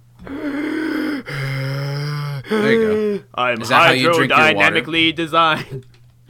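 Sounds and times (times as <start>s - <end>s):
person breathing heavily: 0.2s - 3.2s
speech: 2.5s - 5.9s.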